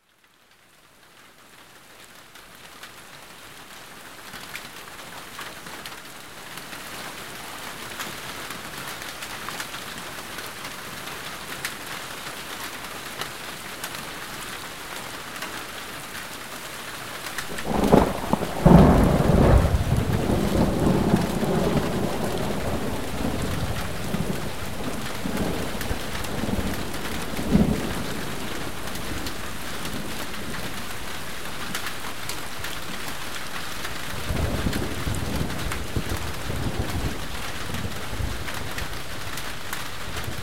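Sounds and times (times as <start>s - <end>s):
rain: 0.0s - 40.4s
thunder: 17.5s - 28.4s.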